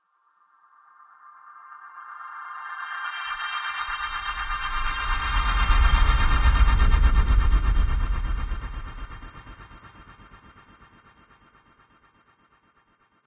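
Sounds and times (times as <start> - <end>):
dark humming drone: 3.9 - 11.4.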